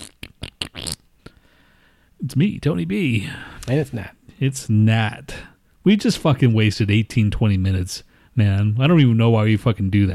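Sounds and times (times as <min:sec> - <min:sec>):
sputtering fart sounds: 0:00.0 - 0:01.1
speech: 0:02.2 - 0:10.1.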